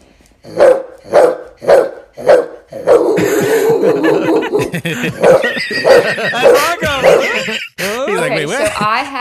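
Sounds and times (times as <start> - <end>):
speech: 1.6 - 2.9, 4.7 - 7.7
laughter: 3.2 - 9.2
woman imitating a barking dog: 5.3 - 7.4.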